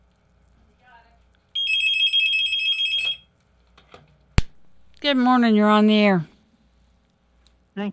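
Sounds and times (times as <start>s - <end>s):
telephone ringing with a loud electronic trill: 1.6s - 3.3s
speech: 5.0s - 6.3s, 7.8s - 7.9s.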